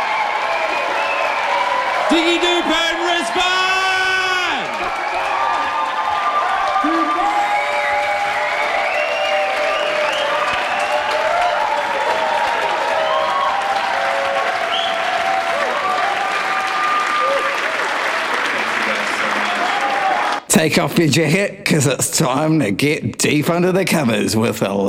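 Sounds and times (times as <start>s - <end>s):
crowd cheers and whoops: 0.0s - 20.4s
large crowd applauding: 0.0s - 20.5s
voices calling out: 2.0s - 5.4s
speech: 20.6s - 24.8s.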